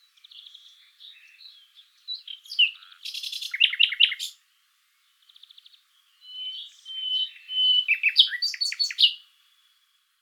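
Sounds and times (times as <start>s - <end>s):
common nightingale Luscinia megarhynchos whistles and chirps: 0.2s - 4.4s, 5.3s - 9.2s.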